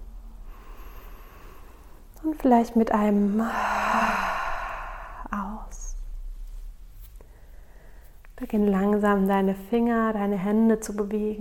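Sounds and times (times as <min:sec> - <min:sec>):
long slow inhale through the nose: 0:00.4 - 0:02.0, 0:03.4 - 0:05.3
speech: 0:02.2 - 0:04.1, 0:08.4 - 0:11.3.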